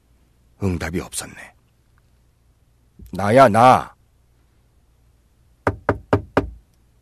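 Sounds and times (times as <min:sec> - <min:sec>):
speech: 0:00.6 - 0:01.6, 0:03.0 - 0:04.0
firm knocking on a wooden door: 0:05.6 - 0:06.6.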